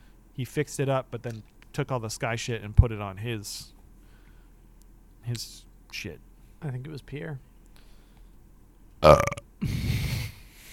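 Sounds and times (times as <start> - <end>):
speech: 0.4 - 3.8, 5.2 - 7.5, 9.0 - 9.7
person burping: 9.0 - 9.5.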